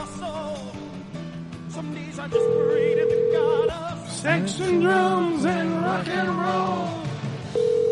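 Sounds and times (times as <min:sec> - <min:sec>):
busy musical background: 0:00.0 - 0:07.9
speech: 0:02.2 - 0:07.1
electronic ringing tone of an outgoing phone call: 0:02.4 - 0:03.9, 0:07.6 - 0:07.9.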